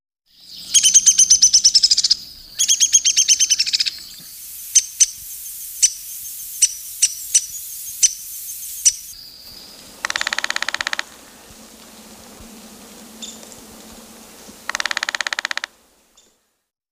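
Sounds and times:
downy woodpecker descending whinnying rattle: 0.4 - 11.5, 14.6 - 16.3
downy woodpecker buzzy call bursts: 0.4 - 16.4
downy woodpecker sharp single pik notes: 2.6 - 15.8.

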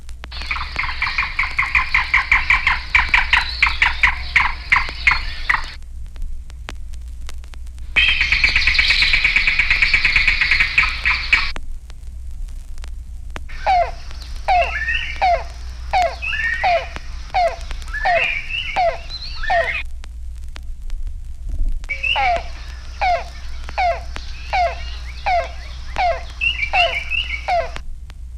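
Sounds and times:
yellow-billed cuckoo calling: 0.4 - 5.8, 8.0 - 11.5, 13.5 - 19.8, 21.9 - 27.8.

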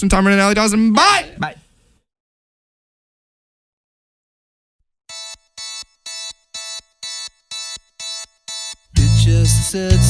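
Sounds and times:
speech: 0.0 - 1.6, 9.6 - 10.0
pop rock song intro with bright synth chords: 8.9 - 10.0.

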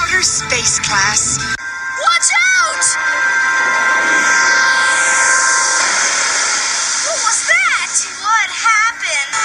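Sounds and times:
speech: 0.2 - 3.4
rocket launch roar: 1.9 - 9.3.

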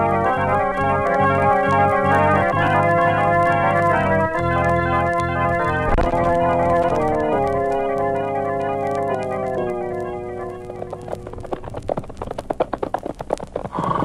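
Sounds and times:
sustained music: 0.0 - 12.0
horse hooves clopping while ridden at a walk at night: 0.3 - 14.0.

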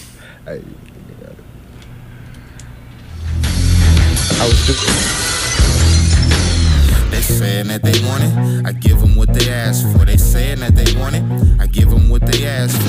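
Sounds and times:
speech: 0.4 - 1.5, 4.4 - 5.2, 7.3 - 12.8
hip-hop record with heavy thumping bass: 3.1 - 12.8.

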